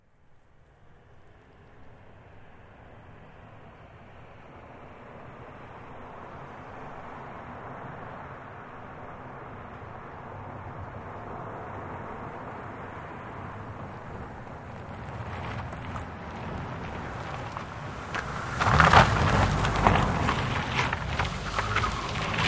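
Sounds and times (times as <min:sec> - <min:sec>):
2005 Toyota Highlander V6 swerving and skidding on dirt: 0:12.7 - 0:22.4.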